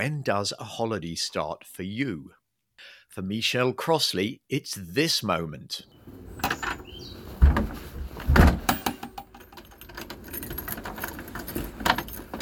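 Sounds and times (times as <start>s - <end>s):
speech: 0.0s - 6.5s
front door pulled shut with solid low thuds: 6.0s - 12.4s
rattling and handling noises: 6.1s - 12.4s
keys jangling: 8.6s - 12.4s.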